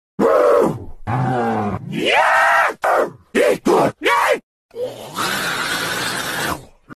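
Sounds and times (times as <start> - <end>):
zombie noises: 0.2 - 6.9.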